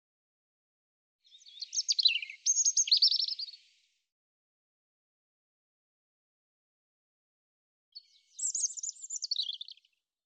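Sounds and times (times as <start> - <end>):
European robin song of thin whistles and twittering trills: 1.3 - 3.6, 8.0 - 9.8.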